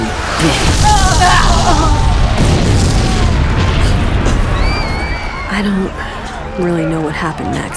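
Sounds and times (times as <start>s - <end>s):
deep dense rumble: 0.0s - 7.2s
bomb exploding in a crowd: 0.1s - 6.3s
speech: 0.4s - 0.8s, 5.6s - 7.7s.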